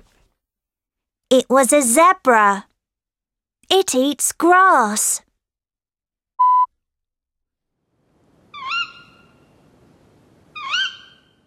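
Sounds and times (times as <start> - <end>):
speech: 1.3 - 2.7, 3.7 - 5.2
short electronic beep: 6.4 - 6.7
bird squawking: 8.5 - 9.4, 10.6 - 11.4.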